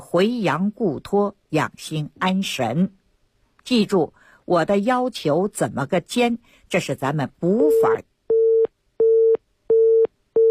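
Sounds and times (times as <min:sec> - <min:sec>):
speech: 0:00.1 - 0:03.0, 0:03.6 - 0:08.1
telephone busy signal after a caller's line drops: 0:07.7 - 0:10.4.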